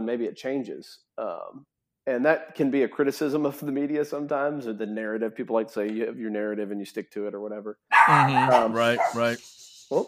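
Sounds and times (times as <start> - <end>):
speech: 0.0 - 10.0
dogs barking in reaction to thunder: 7.9 - 9.4.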